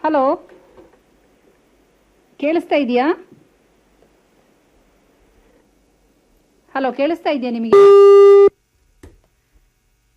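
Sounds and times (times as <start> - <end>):
speech: 0.0 - 0.6, 2.4 - 3.4, 6.8 - 8.3
telephone busy tone after a phone-in call drops: 7.7 - 8.5.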